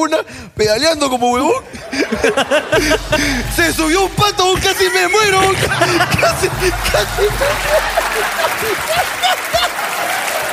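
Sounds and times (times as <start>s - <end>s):
speech: 0.0s - 9.4s
laughter: 1.6s - 10.5s
audience applause: 5.3s - 10.5s
crowd whoops: 5.6s - 10.5s.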